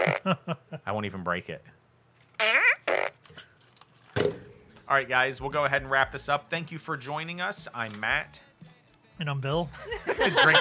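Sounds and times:
fart: 0.0s - 0.3s, 2.4s - 3.2s
speech: 0.0s - 1.8s, 2.4s - 2.7s, 4.2s - 8.5s, 9.2s - 10.5s
laughter: 9.7s - 10.5s.

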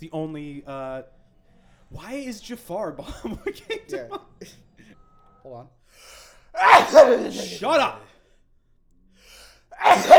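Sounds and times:
speech: 0.0s - 1.2s, 1.9s - 8.1s, 9.8s - 10.1s
loud exaggerated human sneeze: 6.6s - 8.0s, 9.8s - 10.1s.

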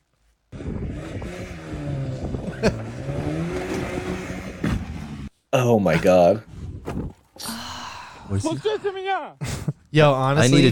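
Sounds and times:
car engine revving high before shifting gear: 0.6s - 5.3s
speech: 5.5s - 7.5s, 8.3s - 10.7s.

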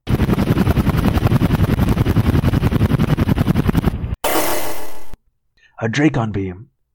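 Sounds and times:
loud helicopter rotor chopping: 0.1s - 5.2s
speech: 5.8s - 6.7s.

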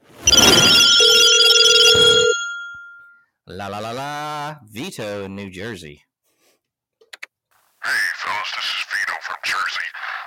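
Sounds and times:
telephone bell ringing for an incoming call-in: 0.2s - 3.1s
speech: 3.6s - 6.1s.

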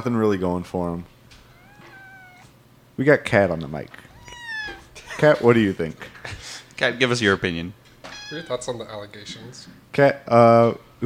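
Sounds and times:
speech: 0.0s - 1.2s, 3.0s - 4.1s, 5.2s - 11.0s
cat meowing: 1.5s - 2.6s, 4.0s - 5.0s, 8.0s - 8.8s.

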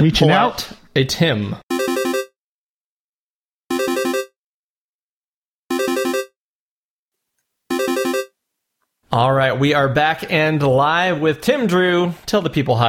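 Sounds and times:
speech: 0.0s - 1.6s, 9.2s - 12.8s
telephone line ringing on a call across the Atlantic: 1.7s - 2.3s, 3.7s - 4.4s, 5.7s - 6.4s, 7.7s - 8.4s.

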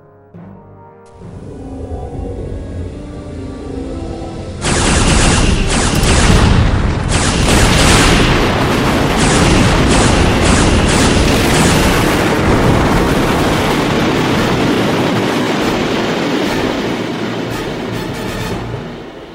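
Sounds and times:
low hum: 0.0s - 19.3s
heavy blast of quantum torpedoes striking a cube-shaped alien starship: 4.3s - 19.3s
long roaring rumbling explosion of a cube-shaped alien starship: 4.6s - 17.8s.

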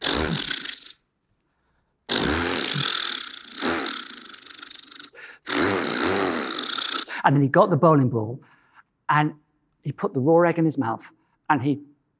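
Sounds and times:
voice imitating a chainsaw starting up: 0.0s - 1.0s, 2.1s - 7.2s
speech: 7.2s - 8.5s, 9.1s - 11.9s.

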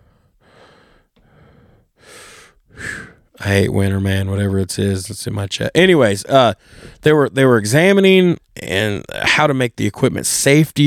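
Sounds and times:
heavy breathing into a microphone: 0.0s - 3.4s, 6.6s - 7.0s
speech: 3.4s - 10.8s.

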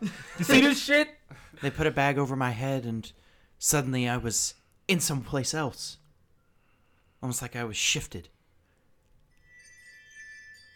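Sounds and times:
speech: 0.0s - 6.0s, 7.2s - 8.4s
soft hiss: 0.0s - 10.7s
wind chimes tinkling: 9.3s - 10.7s.

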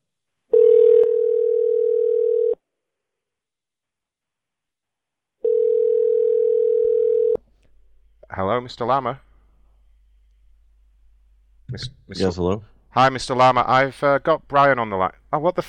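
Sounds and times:
phone line ringback tone: 0.5s - 2.6s, 5.4s - 7.4s
speech: 8.4s - 9.2s, 11.8s - 15.6s.

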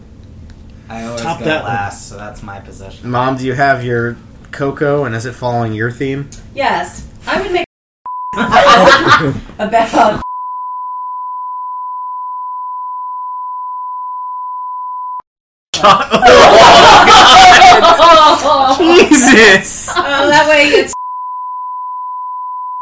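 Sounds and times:
speech: 0.9s - 7.6s, 8.7s - 10.3s, 18.4s - 21.0s
loud steady censor beep tone: 8.1s - 8.4s, 10.2s - 15.2s, 21.0s - 22.8s
excited laughing speech: 8.4s - 10.2s, 15.8s - 20.9s.

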